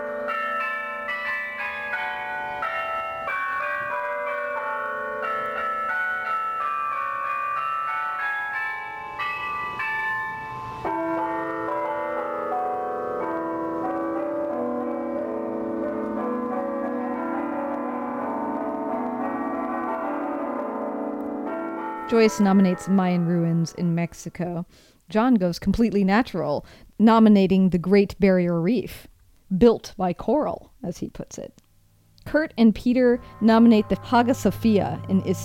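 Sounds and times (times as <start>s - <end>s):
church bells of the Sagrada Familia in Barcelona pealing: 0.0s - 24.0s, 33.0s - 35.4s
speech: 22.1s - 31.6s, 32.3s - 35.4s.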